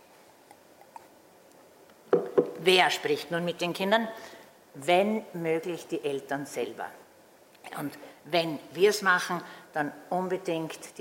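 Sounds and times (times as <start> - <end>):
person sipping water: 0.4 - 1.6
speech: 2.6 - 7.0, 7.8 - 11.0.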